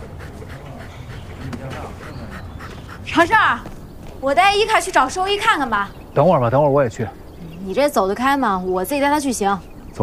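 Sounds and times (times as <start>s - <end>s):
dog panting: 0.0s - 4.0s
speech: 3.1s - 9.7s.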